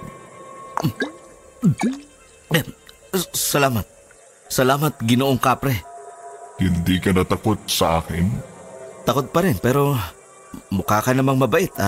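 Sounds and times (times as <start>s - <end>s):
water being poured or drunk: 0.8s - 2.0s
speech: 0.8s - 5.9s, 6.6s - 11.8s.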